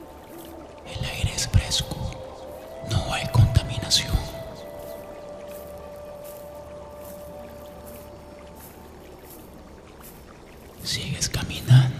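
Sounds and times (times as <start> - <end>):
stream of running water: 0.0 - 11.9
speech: 1.7 - 2.0.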